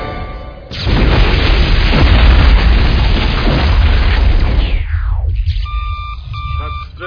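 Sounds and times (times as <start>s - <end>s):
triggering charge explosion blowing out a pipe section: 0.7s - 6.6s
faint electronic beeping tones: 5.6s - 7.0s.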